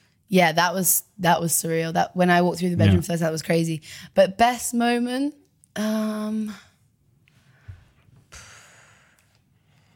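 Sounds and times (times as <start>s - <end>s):
speech: 0.3s - 6.7s
two people breathing: 7.3s - 9.9s.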